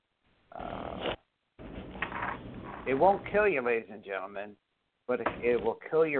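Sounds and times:
loud rasping snores: 0.5s - 1.2s
speech: 2.9s - 6.1s.

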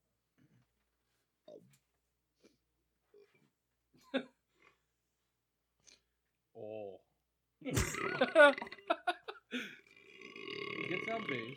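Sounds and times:
speech: 4.0s - 4.3s, 8.2s - 8.8s
loud drawn-out burp: 7.7s - 9.0s, 9.9s - 11.5s.

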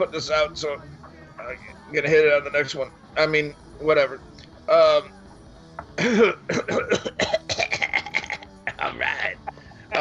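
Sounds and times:
speech: 0.0s - 5.2s, 6.0s - 7.4s, 8.8s - 9.9s
harsh coughing fit after smoking: 6.0s - 8.5s
rough throat-clearing: 6.0s - 8.8s.

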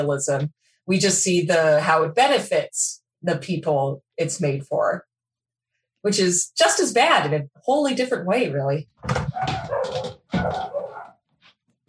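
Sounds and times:
speech: 0.0s - 5.1s, 6.0s - 10.8s
dog barking: 9.3s - 11.2s.

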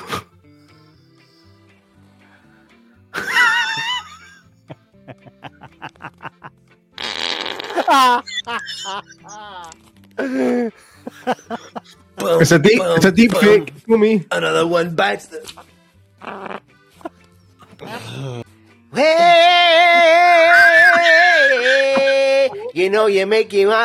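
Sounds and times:
laughter: 3.2s - 6.5s, 7.7s - 12.0s, 19.9s - 22.8s
farts of varying length and pitch: 7.0s - 8.0s, 16.2s - 16.8s
speech: 7.9s - 9.6s, 10.2s - 11.6s, 12.4s - 15.4s, 23.0s - 23.8s.

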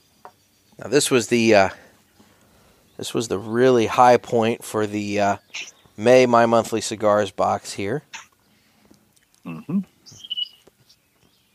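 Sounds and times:
high bird chirps outdoors by a deck on a slightly cloudy day: 0.0s - 11.5s
speech: 0.8s - 1.8s, 3.0s - 8.2s
low voice-like murmur: 9.4s - 9.9s.

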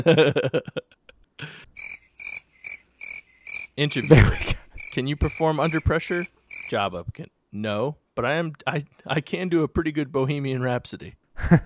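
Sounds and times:
laughter: 0.0s - 1.6s, 4.0s - 4.8s, 11.4s - 11.6s
speech: 0.0s - 1.7s, 3.8s - 11.6s
high-pitched cricket chirps sound effect: 1.4s - 6.9s
loud rough croaking bursts: 1.7s - 6.9s.

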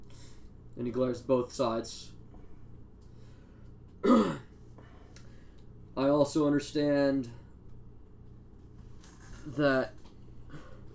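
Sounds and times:
speech: 0.8s - 2.2s, 6.3s - 7.4s, 9.5s - 10.0s
man performing a rough throaty cough: 4.0s - 4.5s.

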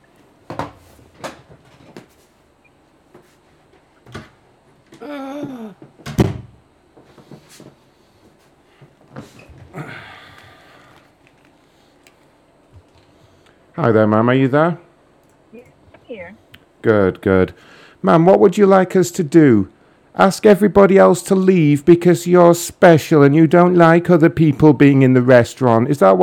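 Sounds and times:
office door being closed: 6.0s - 6.6s
speech: 13.8s - 14.8s, 16.8s - 26.2s.

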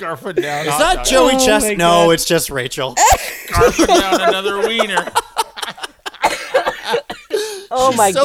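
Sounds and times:
speech: 0.0s - 5.2s, 7.8s - 8.2s
laughter: 0.9s - 7.7s
harsh raspy coughing fit: 3.0s - 5.2s, 6.1s - 7.7s.

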